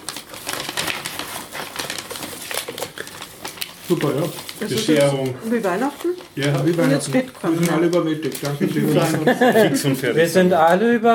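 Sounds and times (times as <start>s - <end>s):
paper tearing and crinkling while a present is unwrapped: 0.0s - 10.8s
speech: 3.9s - 11.1s
laughter: 8.5s - 10.2s.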